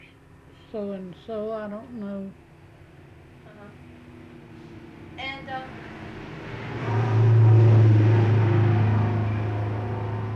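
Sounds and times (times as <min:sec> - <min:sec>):
speech: 0:00.7 - 0:02.4, 0:05.5 - 0:05.9
trucks heading toward oil fields driving past: 0:02.4 - 0:10.3.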